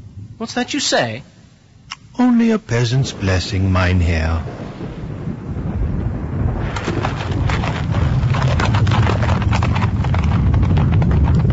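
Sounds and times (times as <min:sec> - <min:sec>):
low rumbling background: 0:00.0 - 0:11.5
speech: 0:00.4 - 0:01.4, 0:02.2 - 0:04.6
horse hooves trotting on a hard road: 0:06.6 - 0:11.5.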